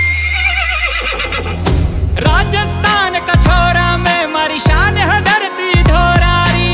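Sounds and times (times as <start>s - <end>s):
horse whinnying: 0.0s - 1.6s
sharp percussive hit: 1.5s - 6.6s.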